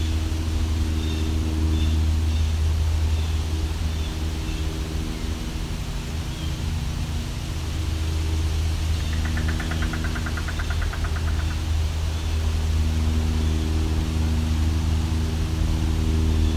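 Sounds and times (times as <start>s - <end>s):
airplane flying overhead: 0.0s - 16.5s.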